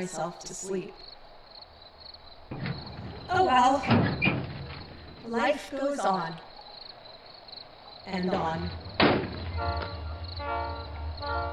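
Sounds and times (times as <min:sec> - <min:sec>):
speech: 0:00.0 - 0:01.2, 0:03.3 - 0:04.4, 0:05.2 - 0:06.5, 0:08.0 - 0:08.8, 0:09.6 - 0:11.5
train horn blaring: 0:08.4 - 0:11.5.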